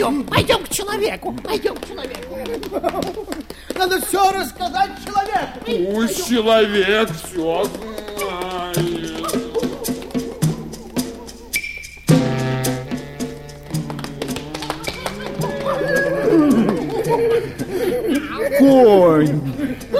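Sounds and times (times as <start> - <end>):
speech: 0.0 - 8.0, 18.6 - 19.9
laughter: 0.0 - 11.6, 13.8 - 19.9
horse hooves clip-clopping: 0.0 - 19.9
horse whinnying with a rising wavering call: 7.7 - 11.6, 14.1 - 17.0.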